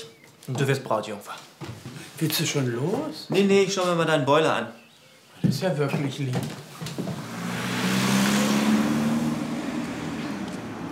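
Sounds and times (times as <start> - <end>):
speech: 0.5 - 4.8, 5.4 - 6.6
car driving past: 7.0 - 10.9.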